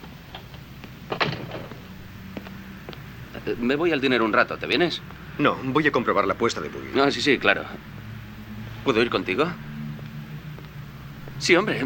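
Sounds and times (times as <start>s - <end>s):
door pushed shut on a cold day: 1.1s - 1.8s
speech: 3.4s - 8.0s, 8.8s - 9.7s, 11.4s - 11.8s.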